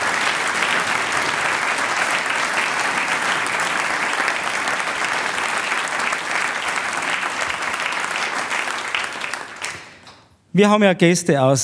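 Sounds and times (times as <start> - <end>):
audience applause: 0.0 - 10.0
speech: 10.6 - 11.6.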